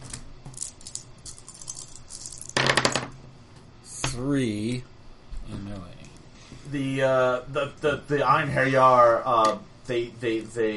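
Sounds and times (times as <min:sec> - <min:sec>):
dice rolling on a table: 0:00.5 - 0:03.2
speech: 0:04.2 - 0:04.9, 0:06.7 - 0:10.7.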